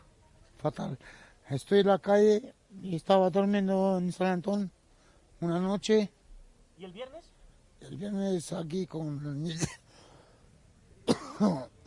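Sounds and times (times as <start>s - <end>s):
speech: 0.6s - 4.8s, 5.4s - 6.2s, 6.8s - 9.8s, 11.4s - 11.7s
person sleeping rough on a snowy street coughing in the cold: 9.5s - 9.8s, 11.0s - 11.8s.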